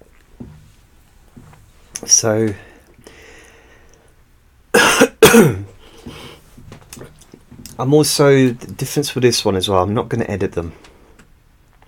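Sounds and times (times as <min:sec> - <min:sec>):
quiet rustling: 0:00.0 - 0:04.4, 0:05.6 - 0:11.8
breathy noise: 0:01.3 - 0:04.4, 0:05.6 - 0:07.6, 0:10.6 - 0:11.4
speech: 0:02.0 - 0:02.7, 0:05.3 - 0:05.6, 0:07.8 - 0:10.9
sharp loud coughs close to the microphone: 0:04.8 - 0:05.7.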